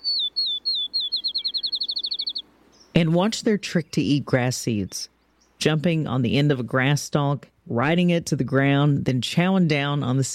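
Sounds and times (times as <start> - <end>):
field sparrow singing a whistled song: 0.0 - 6.0
speech: 3.0 - 10.3.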